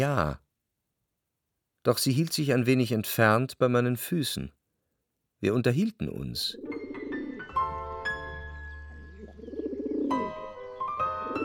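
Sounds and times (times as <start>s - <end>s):
speech: 0.0s - 0.4s, 1.8s - 4.6s, 5.4s - 6.7s
doves cooing at daybreak in early spring: 6.6s - 7.5s, 8.9s - 11.4s.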